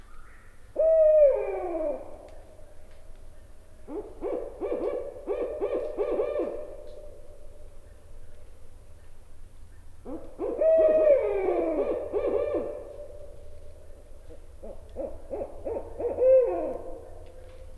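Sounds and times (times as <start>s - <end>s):
barred owl hooting: 0.1s - 2.3s, 3.8s - 6.8s, 10.0s - 13.3s, 14.2s - 17.6s.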